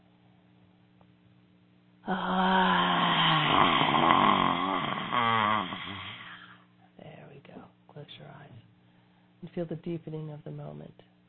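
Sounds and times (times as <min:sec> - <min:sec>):
long voiced hoarse exhale with tongue stuck out: 0:02.0 - 0:06.7
speech: 0:09.6 - 0:11.2.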